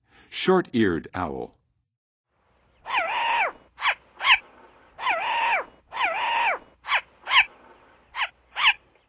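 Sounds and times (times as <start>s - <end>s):
short-eared owl calling in the Western USA: 2.8s - 9.0s.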